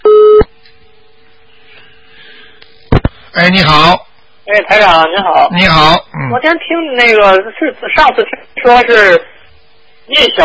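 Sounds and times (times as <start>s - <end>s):
telephone busy-signal beep after a call drops: 0.0s - 0.5s
speech: 3.4s - 9.3s, 10.1s - 10.4s.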